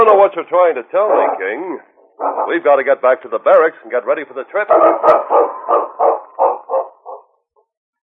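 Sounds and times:
speech: 0.0 - 5.9
sled dog barking: 1.0 - 2.6, 4.7 - 7.3.

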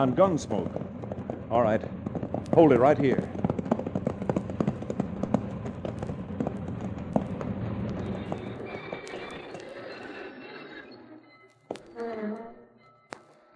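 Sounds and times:
speech: 0.0 - 0.9, 1.5 - 3.4
low rumbling background: 0.0 - 9.6
horse hooves clip-clopping: 0.0 - 10.3.

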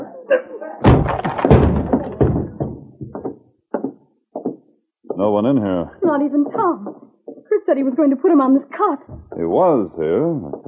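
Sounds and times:
locked office door forced open by breaking its lock: 0.8 - 3.4
scattered knocks and bumps: 0.8 - 5.3, 9.1 - 9.5
speech: 5.2 - 7.0, 7.7 - 10.6.

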